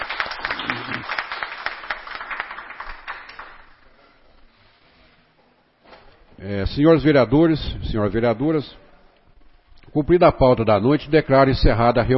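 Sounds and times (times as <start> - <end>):
council chamber audience applauding in a room: 0.0 - 3.8
speech: 6.4 - 8.8, 10.0 - 12.1.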